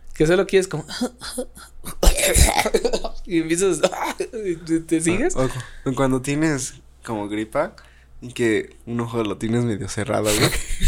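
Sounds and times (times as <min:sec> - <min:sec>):
speech: 0:00.2 - 0:10.8
person imitating a coughing fit with raspy hacking coughs: 0:01.8 - 0:03.0, 0:10.3 - 0:10.8.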